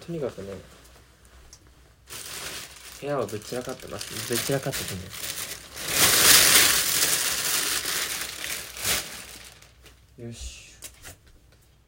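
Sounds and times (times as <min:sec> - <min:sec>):
speech: 0:00.1 - 0:00.8, 0:03.0 - 0:05.3, 0:10.2 - 0:10.6
fabric rustling as clothes are handled and folded: 0:02.0 - 0:09.8.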